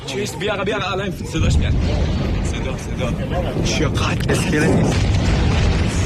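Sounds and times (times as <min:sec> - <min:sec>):
deep booming explosions on a coastline: 0:01.2 - 0:06.0.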